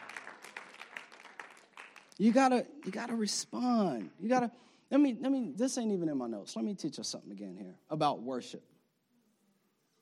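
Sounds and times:
audience clapping: 0.0s - 4.2s
speech: 2.2s - 8.7s.

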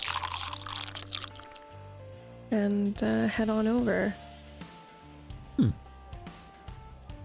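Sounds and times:
pints of beer being poured: 0.0s - 1.8s
speech: 2.5s - 4.2s, 5.6s - 5.8s.

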